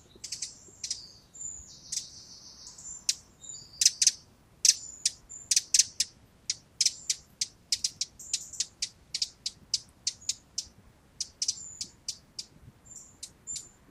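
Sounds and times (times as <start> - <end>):
Eurasian wren Troglodytes troglodytes ticking and chattering: 0.0 - 1.2, 1.8 - 2.2, 3.0 - 13.8.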